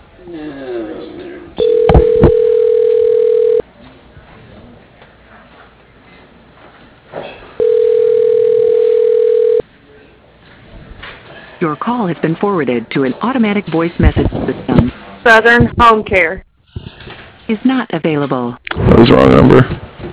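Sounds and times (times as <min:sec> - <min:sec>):
speech: 0:00.2 - 0:00.8, 0:11.8 - 0:16.4, 0:17.5 - 0:19.8
long steady ringback tones on a phone line: 0:01.6 - 0:03.6, 0:07.6 - 0:09.6.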